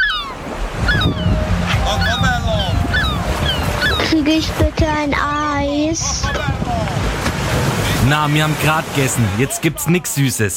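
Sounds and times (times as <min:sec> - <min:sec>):
bird calls: 0:00.0 - 0:04.4
voices: 0:00.0 - 0:10.1
ocean surf washing along a beach: 0:00.0 - 0:10.3
wind: 0:00.0 - 0:10.5
speech: 0:04.2 - 0:07.2, 0:08.0 - 0:10.5.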